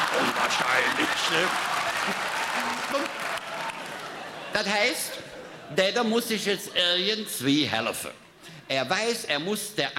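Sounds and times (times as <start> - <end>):
audience applause: 0.0 - 4.5
speech: 1.3 - 2.3, 4.6 - 9.9.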